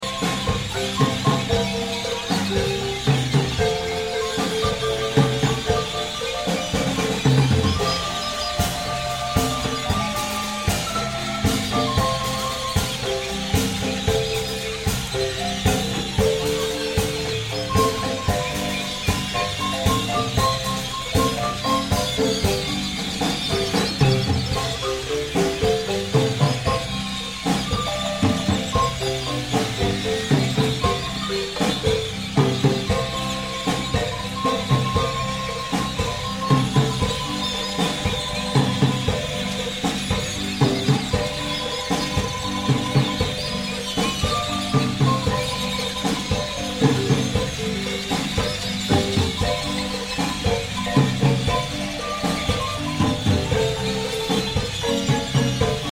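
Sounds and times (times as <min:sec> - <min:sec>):
marimba music from Usumacinta in Mexico: 0:00.0 - 0:55.9.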